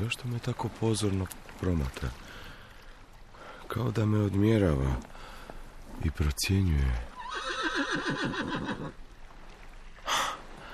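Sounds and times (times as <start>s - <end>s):
speech: 0.0s - 2.4s, 3.7s - 5.3s, 6.0s - 7.1s, 7.9s - 9.0s
horse whinnying: 7.1s - 9.0s.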